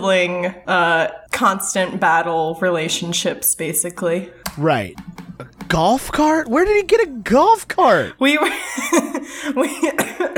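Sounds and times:
speech: 0:00.0 - 0:10.3
laughter: 0:08.2 - 0:10.3
harsh coughs from one person: 0:09.8 - 0:10.3.

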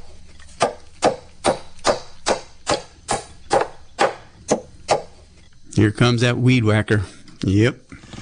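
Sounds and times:
hammer blows striking wood: 0:00.6 - 0:05.1
speech: 0:05.8 - 0:07.8.

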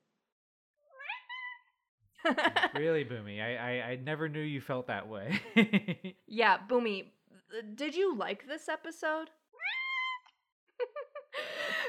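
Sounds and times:
pet cat meowing: 0:00.9 - 0:01.7, 0:09.6 - 0:10.3
laughter: 0:02.2 - 0:03.7, 0:05.1 - 0:06.1
speech: 0:02.2 - 0:09.4.

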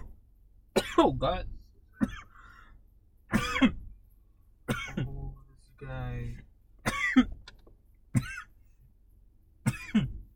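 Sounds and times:
person coughing after a hit to the throat: 0:00.8 - 0:01.1, 0:02.0 - 0:02.5, 0:03.3 - 0:03.9, 0:04.7 - 0:05.2, 0:06.8 - 0:07.4, 0:08.1 - 0:08.6, 0:09.6 - 0:10.2
speech: 0:01.0 - 0:02.2.

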